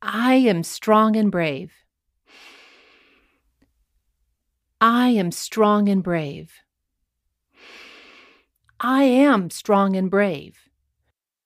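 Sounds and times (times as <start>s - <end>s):
speech: 0.2s - 1.8s, 4.8s - 6.6s, 8.8s - 10.6s
soft breath: 2.3s - 3.6s, 7.5s - 8.5s.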